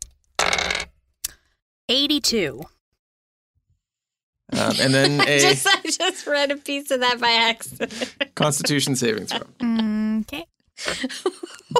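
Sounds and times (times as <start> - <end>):
percentile dice rolling across a tabletop: 0.4 - 0.9
speech: 1.9 - 2.8, 4.5 - 11.7
laughter: 4.5 - 10.0, 10.8 - 11.7.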